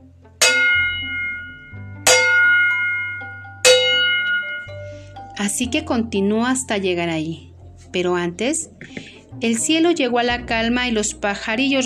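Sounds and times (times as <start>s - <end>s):
distant village bells ringing: 0.4s - 5.4s
speech: 5.4s - 11.8s.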